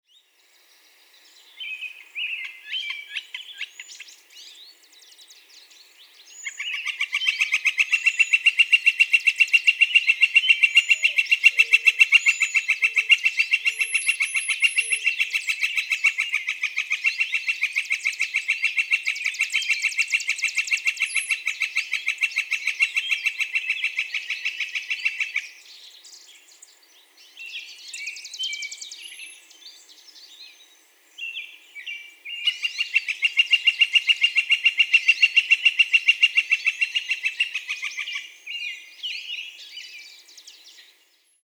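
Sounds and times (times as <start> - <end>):
Northern Flicker calling: 0.1 - 41.1.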